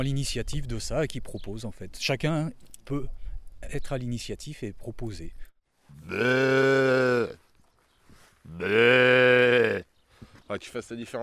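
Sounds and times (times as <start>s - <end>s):
speech: 0.0s - 7.4s, 8.4s - 9.9s, 10.5s - 11.2s
person imitating a ewe bleating: 5.9s - 7.4s, 8.5s - 9.9s.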